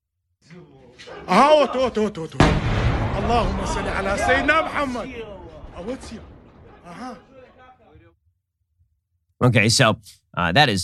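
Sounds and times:
people shouting excitedly: 0:00.5 - 0:02.3, 0:03.2 - 0:08.0
speech: 0:00.5 - 0:06.3, 0:06.9 - 0:07.3, 0:09.4 - 0:10.8
missile strike explosion: 0:02.4 - 0:07.8
sustained rumbling after a missile strike: 0:02.4 - 0:07.9.

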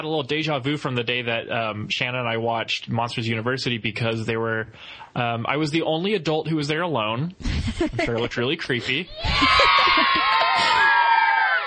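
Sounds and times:
speech: 0:00.0 - 0:10.9
laughter: 0:07.4 - 0:11.3
many children screaming and shrieking at once: 0:09.1 - 0:11.6.

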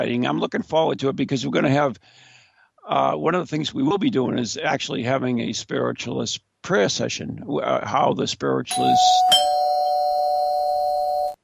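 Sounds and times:
speech: 0:00.0 - 0:02.3, 0:02.9 - 0:09.5
electronic doorbell tone: 0:08.7 - 0:11.4.

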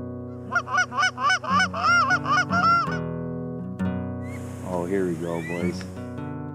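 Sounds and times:
flock of snow geese honking: 0:00.4 - 0:03.1, 0:04.2 - 0:06.2
speech: 0:04.8 - 0:05.9.

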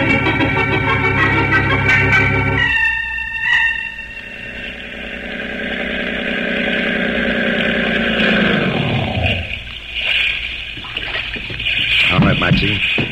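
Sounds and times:
motorboat engine droning and revving: 0:00.0 - 0:13.0
water splashing: 0:04.4 - 0:13.0.

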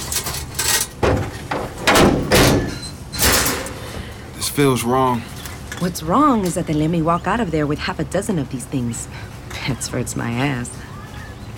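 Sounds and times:
vehicle tailgate being opened: 0:00.8 - 0:04.0
speech: 0:04.6 - 0:10.9.

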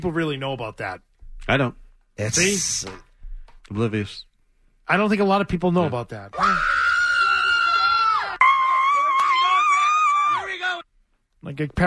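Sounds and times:
speech: 0:00.0 - 0:03.1, 0:03.7 - 0:04.3, 0:04.9 - 0:06.8, 0:11.4 - 0:11.8
woman yelling and screaming after a game: 0:06.4 - 0:10.6.

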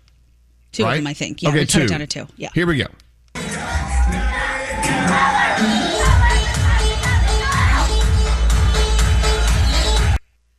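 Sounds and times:
speech: 0:00.8 - 0:03.0
outdoor crowd shouting and cheering: 0:03.4 - 0:10.2
heavy pumping bass beat: 0:04.8 - 0:10.2.

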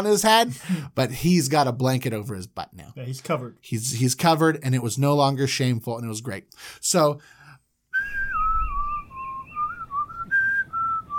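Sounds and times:
speech: 0:00.0 - 0:07.4
person whistling a tune: 0:08.0 - 0:11.1.

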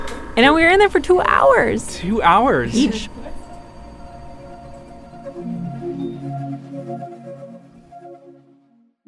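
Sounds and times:
speech: 0:00.4 - 0:03.4
person imitating MRI brain scanner hum: 0:02.1 - 0:05.9.

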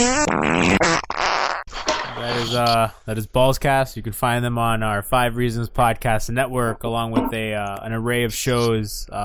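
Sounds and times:
raspy sputtering fart noises: 0:00.0 - 0:02.7
speech: 0:02.5 - 0:09.2.

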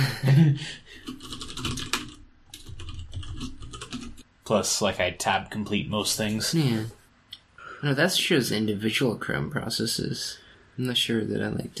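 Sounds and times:
speech: 0:00.4 - 0:01.2, 0:04.5 - 0:07.0, 0:07.8 - 0:11.7
rapid typing on a blank computer keyboard: 0:01.0 - 0:04.2.

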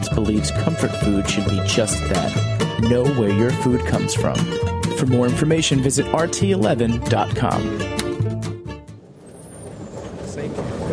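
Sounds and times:
bus engine rumbling as it slows and stops: 0:00.0 - 0:10.9
speech: 0:00.1 - 0:08.0
thin bus brake squeal: 0:09.0 - 0:10.9.

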